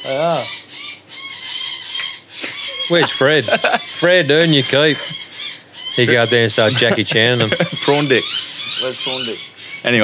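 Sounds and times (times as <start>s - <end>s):
speech: 0.0s - 0.6s, 2.9s - 5.2s, 6.0s - 10.0s
birds squawking in a noisy squabble: 0.0s - 10.0s
laughter: 2.4s - 5.2s, 6.0s - 8.2s.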